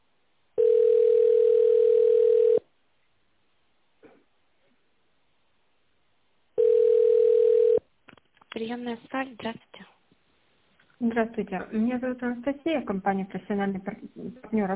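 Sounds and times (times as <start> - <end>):
telephone ringback tone as a call is transferred to an operator: 0.6 - 2.6, 6.6 - 7.8
speech: 8.7 - 9.8, 11.0 - 14.7.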